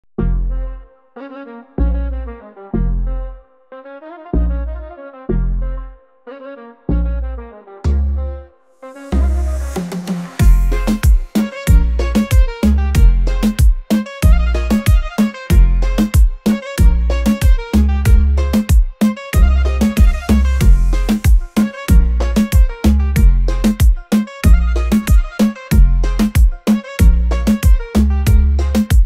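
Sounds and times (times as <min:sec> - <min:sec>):
reggaeton bass: 0:00.0 - 0:03.4, 0:04.4 - 0:06.0, 0:06.8 - 0:08.5, 0:09.1 - 0:29.0.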